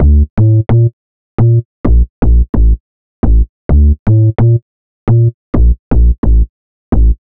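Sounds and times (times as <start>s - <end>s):
bass loop in D minor at 130 bpm: 0.0s - 7.2s.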